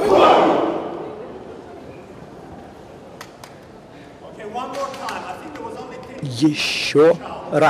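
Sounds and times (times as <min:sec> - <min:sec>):
crowd shouting a forceful exhale in unison: 0:00.0 - 0:01.1
speech: 0:06.4 - 0:07.6.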